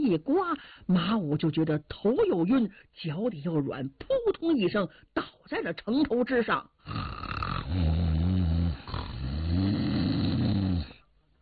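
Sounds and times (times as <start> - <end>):
speech: 0.1 - 8.0
brief gasp: 0.6 - 0.9
man's voice imitating loud snoring: 6.8 - 11.0.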